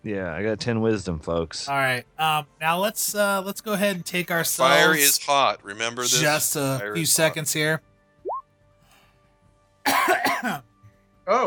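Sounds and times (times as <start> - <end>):
speech: 0.0 - 7.9, 9.8 - 10.7
person coughing and choking during a tabletop role-playing game session: 9.9 - 10.6.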